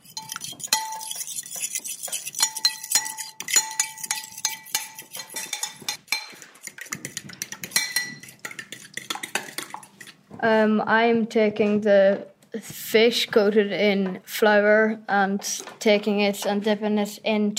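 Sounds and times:
eggs being whisked in a bowl: 0.0s - 10.3s
speech: 10.4s - 17.5s.

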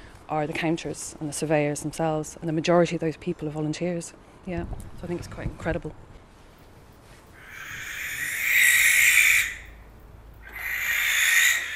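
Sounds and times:
speech: 0.3s - 6.1s
barn owl hissing screech: 7.3s - 9.8s, 10.4s - 11.7s.

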